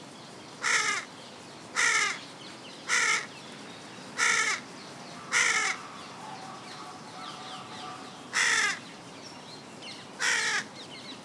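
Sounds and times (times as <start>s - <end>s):
background hiss: 0.0s - 11.2s
carrion crow Corvus corone cawing: 0.6s - 1.1s, 1.8s - 2.2s, 2.9s - 3.3s, 4.2s - 4.6s, 5.3s - 8.8s, 10.2s - 10.7s.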